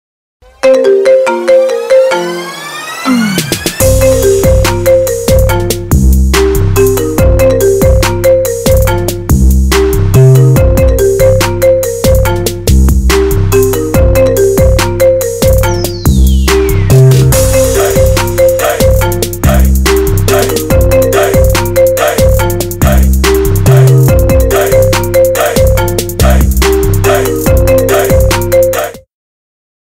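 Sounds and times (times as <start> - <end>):
phone ringtone trap remix: 0.5 - 29.1.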